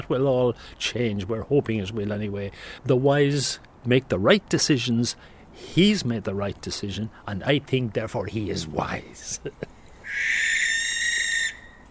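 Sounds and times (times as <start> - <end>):
speech: 0.1 - 10.6
laughter: 9.2 - 9.7
barn owl screech: 10.0 - 11.8.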